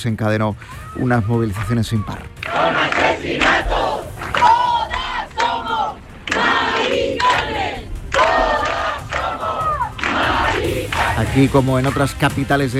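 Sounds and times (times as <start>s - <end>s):
speech: 0.0s - 3.8s, 11.3s - 12.7s
large protest crowd chanting slogans in unison: 2.3s - 11.7s.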